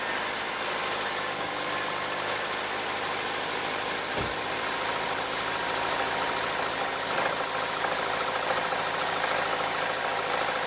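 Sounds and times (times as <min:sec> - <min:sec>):
engine knocking: 0:00.2 - 0:10.6.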